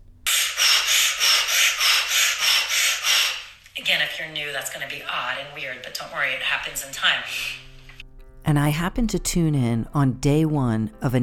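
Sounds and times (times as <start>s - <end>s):
rapid forceful nasal breath-of-fire breathing: 0.3s - 3.6s
speech: 4.0s - 7.6s, 8.4s - 11.2s.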